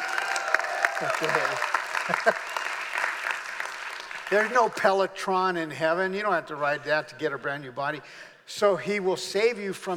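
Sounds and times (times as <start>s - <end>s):
cheers: 0.0s - 4.0s
church audience applauding: 0.0s - 4.8s
speech: 1.0s - 2.6s, 4.3s - 9.9s.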